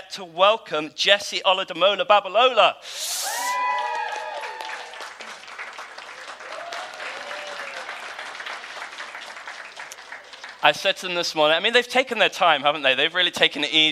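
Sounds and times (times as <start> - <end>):
speech: 0.1 - 3.4, 10.6 - 13.9
high whoops and cheers: 3.0 - 5.3, 6.1 - 8.2
room full of people applauding: 3.2 - 10.8.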